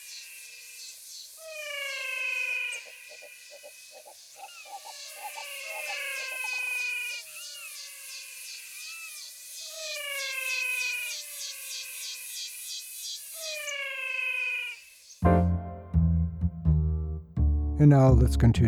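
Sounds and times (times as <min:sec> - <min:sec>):
chorus of frogs calling in Pantanal wetland: 0:00.0 - 0:15.2
low sound: 0:15.2 - 0:18.6
speech: 0:17.8 - 0:18.6.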